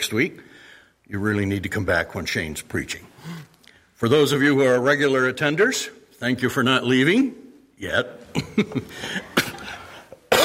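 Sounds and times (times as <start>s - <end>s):
speech: 0.0s - 0.5s, 1.1s - 9.4s
person coughing with hacking bursts: 9.2s - 10.4s.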